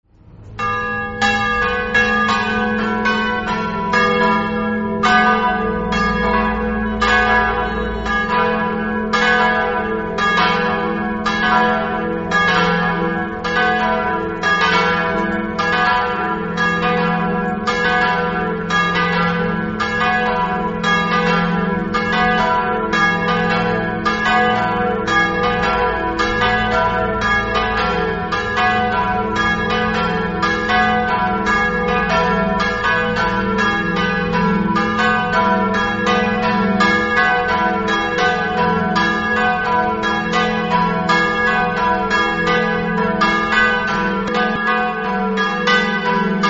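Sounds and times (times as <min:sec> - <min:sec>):
bells ringing: 0:00.2 - 0:46.4.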